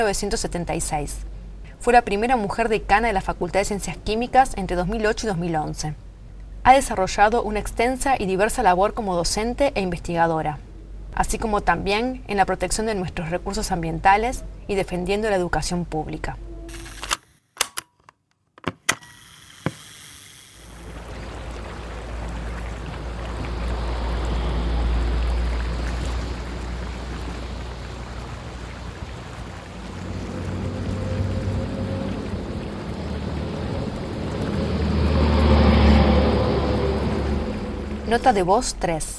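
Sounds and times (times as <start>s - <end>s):
speech: 0.0s - 6.0s, 6.6s - 16.5s, 38.2s - 39.1s
sharp mechanical clicks: 16.7s - 21.0s
flowing river water: 19.0s - 38.8s
vehicles passing: 20.6s - 38.8s
rumbling city traffic by a riverbank: 21.0s - 39.1s.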